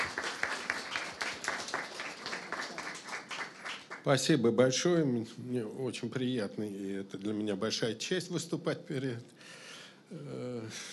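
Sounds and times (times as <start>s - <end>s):
room full of people applauding: 0.0s - 4.2s
speech: 4.0s - 9.4s, 10.1s - 10.9s.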